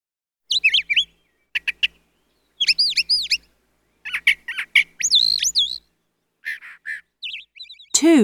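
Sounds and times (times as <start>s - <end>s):
bird chirping in high warbling notes: 0.5s - 8.2s
speech: 8.0s - 8.2s.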